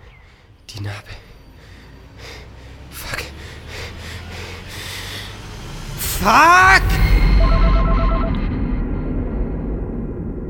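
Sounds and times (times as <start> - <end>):
loud low rumbling background: 0.0 - 10.4
speech: 0.8 - 1.3, 6.2 - 7.0
mobile phone ringing with a two-tone electronic trill: 7.4 - 8.4.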